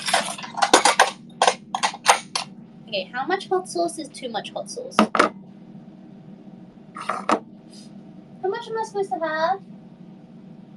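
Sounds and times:
bowl and dishes clinking in a kitchen: 0.0 - 2.4
low steady hum: 0.0 - 10.7
speech: 2.9 - 5.4, 8.7 - 9.7.

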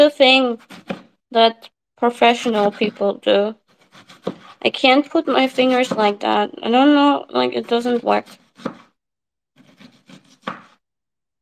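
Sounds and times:
speech: 0.0 - 8.8
knife chopping food in a kitchen: 0.5 - 1.1, 2.3 - 4.6, 5.3 - 6.4, 7.6 - 9.0, 9.6 - 10.8.

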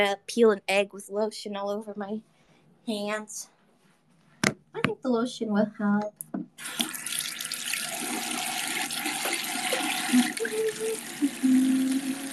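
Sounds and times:
speech: 0.0 - 3.5, 4.7 - 7.0, 10.1 - 12.3
water running from a tap while hands are washed: 6.6 - 12.3.

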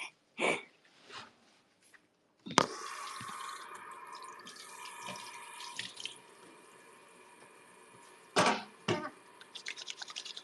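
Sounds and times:
water running from a tap as hands are washed at a sink: 2.7 - 10.4
water splashes and knocks at a sink: 8.4 - 9.8.

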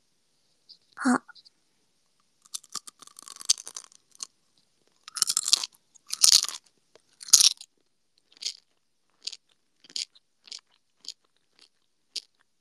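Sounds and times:
speech: 1.0 - 1.3
chewing crunchy gummy candy: 2.5 - 12.5.

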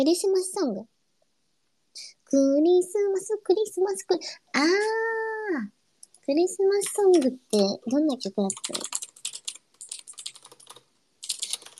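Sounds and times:
speech: 0.0 - 1.0, 2.0 - 9.0
rapid typing on a computer keyboard: 8.5 - 11.7.

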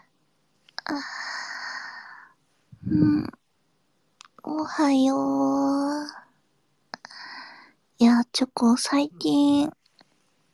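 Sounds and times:
speech: 0.9 - 1.2, 2.9 - 3.4, 4.6 - 6.2, 8.4 - 9.8
person yawning: 2.8 - 3.3.

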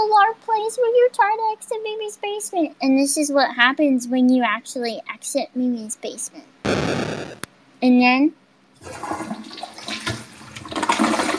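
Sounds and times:
speech: 0.3 - 9.6
toilet flushing with rushing swirl of water: 8.8 - 11.3.

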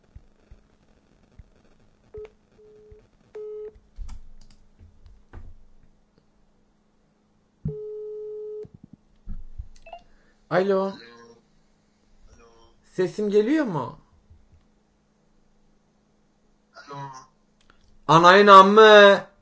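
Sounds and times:
telephone beeps while redialling a number: 2.2 - 3.7, 7.7 - 8.7
speech: 10.5 - 11.1, 13.0 - 14.0, 18.1 - 19.3.

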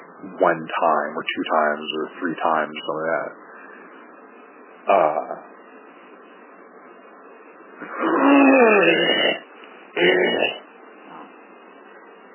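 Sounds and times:
speech: 0.3 - 3.5, 4.9 - 5.5, 7.8 - 9.4, 10.0 - 10.6
person clearing throat: 4.9 - 5.4, 7.8 - 9.4, 10.0 - 10.6.

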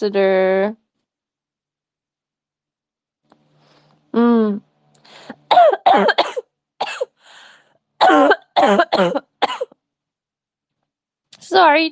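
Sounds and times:
speech: 0.0 - 0.8, 4.2 - 4.7, 5.3 - 6.4, 8.1 - 9.3, 11.5 - 11.9
harsh coughing: 5.5 - 7.2, 8.0 - 9.8.

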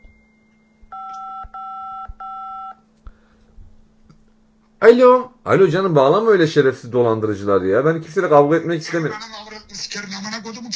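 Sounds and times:
phone ringing with an incoming call: 0.9 - 2.8
speech: 4.8 - 10.7.

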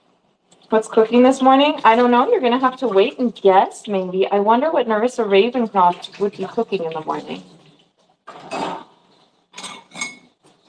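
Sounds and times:
speech: 0.7 - 7.6
dishes and cutlery clattering while being washed in a kitchen sink: 7.4 - 10.6.

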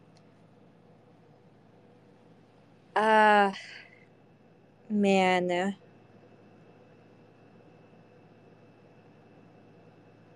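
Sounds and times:
air conditioner humming: 0.0 - 10.3
speech: 3.0 - 3.8, 4.9 - 5.8.

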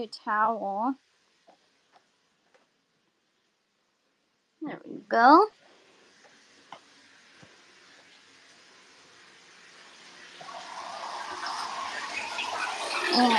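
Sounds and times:
speech: 0.0 - 1.1, 4.6 - 5.6, 13.1 - 13.3
water pouring into a bathtub: 5.6 - 13.3.

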